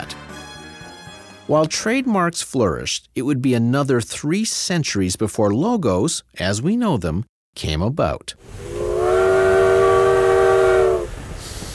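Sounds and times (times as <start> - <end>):
speech: 1.5 - 8.8
steam train whistle blowing a chord-like note: 8.6 - 11.3.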